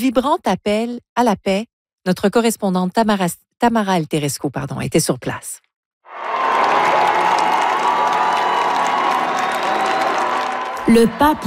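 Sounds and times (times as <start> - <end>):
speech: 0.0 - 5.6, 10.9 - 11.4
huge crowd of faithful cheering at an outdoor papal mass: 6.1 - 11.4.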